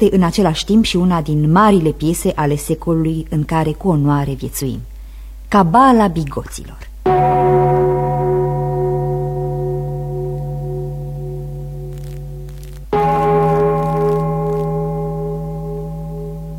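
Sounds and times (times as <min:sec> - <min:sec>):
speech: 0:00.0 - 0:04.9, 0:05.5 - 0:06.9
theatre gong ringing: 0:07.1 - 0:16.5.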